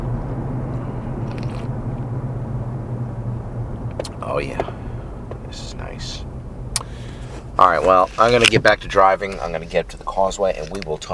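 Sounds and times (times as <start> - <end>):
engine rumble inside a moving car: 0.0 - 11.1
road noise inside a moving car: 0.0 - 11.1
slurping sip of coffee from a cup: 1.2 - 1.7
speech: 4.4 - 4.8, 7.6 - 11.1.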